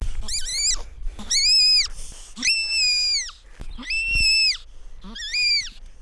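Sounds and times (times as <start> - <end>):
Spermophilus fulvus scream: 0.2 - 5.8.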